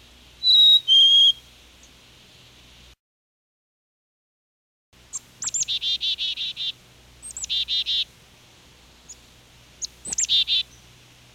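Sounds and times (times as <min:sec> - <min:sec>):
Black-capped chickadee Poecile atricapillus calling: 0:00.4 - 0:02.0, 0:05.1 - 0:08.1, 0:09.0 - 0:10.9.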